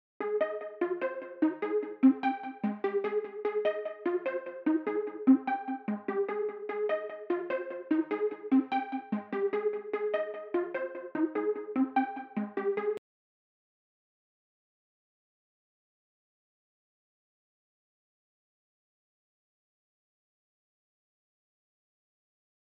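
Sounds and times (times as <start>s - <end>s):
148 BPM F major pluck melody: 0.2s - 13.0s.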